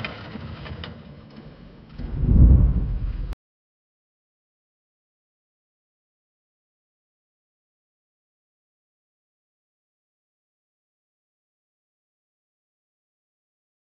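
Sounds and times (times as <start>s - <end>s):
weather sound effect: 2.0s - 3.4s.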